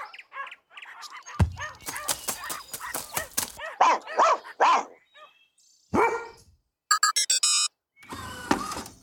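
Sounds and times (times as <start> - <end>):
dogs yipping: 0.0 - 5.4
dogs barking: 0.0 - 6.4.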